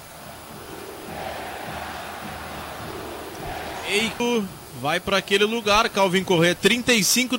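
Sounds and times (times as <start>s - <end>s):
large football stadium crowd chanting insults during a match: 0.0s - 4.8s
speech: 3.9s - 7.3s.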